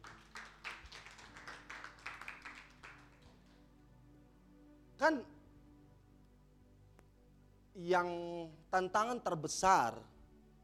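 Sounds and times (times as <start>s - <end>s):
group of people clapping their hands: 0.0s - 3.7s
speech: 5.0s - 5.4s, 7.8s - 10.1s.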